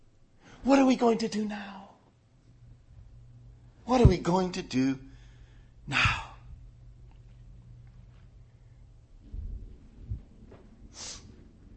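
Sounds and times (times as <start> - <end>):
speech: 0.6 - 1.8, 3.9 - 5.1, 5.9 - 6.2
thunder rumbling: 9.2 - 11.7.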